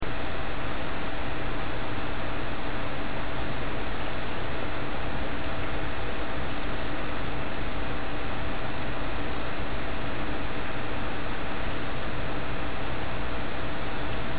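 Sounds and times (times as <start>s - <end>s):
faint hum: 0.0s - 14.3s
cicada buzzing in doubled bursts: 0.8s - 2.0s, 3.4s - 4.6s, 5.9s - 7.2s, 8.5s - 9.8s, 11.1s - 12.3s, 13.7s - 14.3s.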